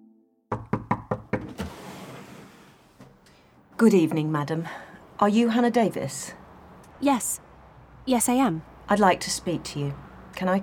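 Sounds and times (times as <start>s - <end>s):
police officer knocking on a house door: 0.5s - 1.6s
speech: 3.8s - 6.4s, 7.0s - 7.4s, 8.0s - 10.6s.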